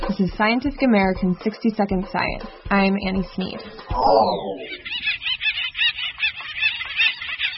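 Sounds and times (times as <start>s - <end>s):
speech: 0.2s - 5.2s
acorn woodpeckers calling while fighting over trees: 3.7s - 7.5s.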